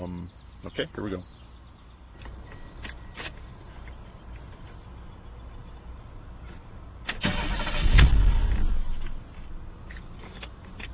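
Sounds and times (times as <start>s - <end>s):
speech: 0.0s - 1.4s
car engine cranking and starting with driver's door open: 7.0s - 9.3s.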